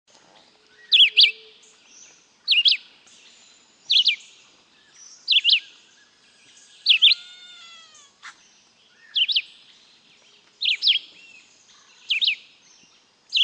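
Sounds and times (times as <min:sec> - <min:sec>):
Red-eyed Vireo (Vireo olivaceus) singing slurred whistled phrases: 0:00.7 - 0:01.5, 0:02.5 - 0:05.9, 0:06.6 - 0:07.3, 0:08.9 - 0:09.6, 0:10.6 - 0:12.5.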